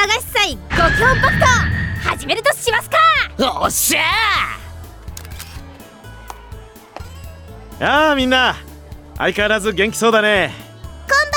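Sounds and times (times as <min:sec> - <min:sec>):
steady tonal background: 0:00.7 - 0:03.0
speech: 0:02.2 - 0:04.6, 0:07.8 - 0:10.6
camera shutter clicking as someone takes photos at a summer festival: 0:05.1 - 0:05.7.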